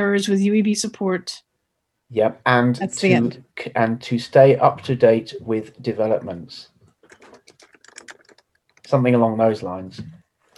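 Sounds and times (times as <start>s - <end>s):
speech: 0.0s - 1.5s, 2.1s - 6.7s, 8.9s - 10.2s
rapid typing on a computer keyboard: 7.0s - 9.0s.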